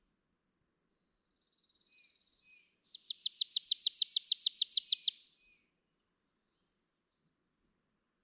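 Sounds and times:
Chipping Sparrow trilling: 2.9s - 5.3s.

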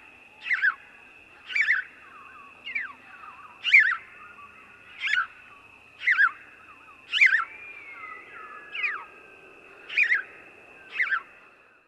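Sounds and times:
house sparrow chirping: 0.4s - 0.8s, 1.4s - 6.4s, 7.1s - 9.1s, 9.9s - 10.3s, 10.9s - 11.2s.

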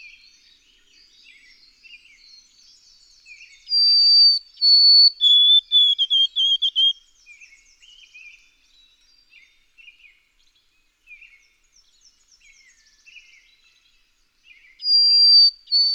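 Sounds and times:
white-throated sparrow singing clear whistles: 0.1s - 8.4s, 14.5s - 15.9s.

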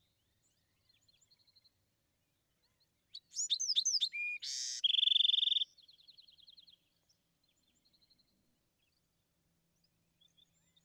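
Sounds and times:
Bewick's wren singing: 3.1s - 5.7s.

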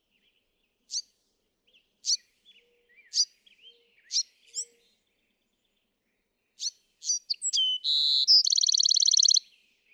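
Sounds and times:
Bewick's wren song: 7.3s - 9.4s.

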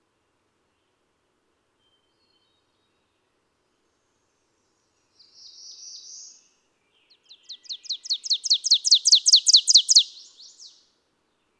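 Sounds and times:
Ovenbird singing: 7.3s - 10.8s.

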